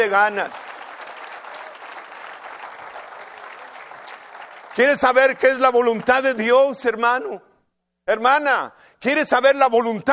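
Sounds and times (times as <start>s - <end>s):
speech: 0.0s - 0.6s, 4.8s - 7.5s, 8.1s - 10.1s
audience applauding loudly: 0.0s - 6.3s.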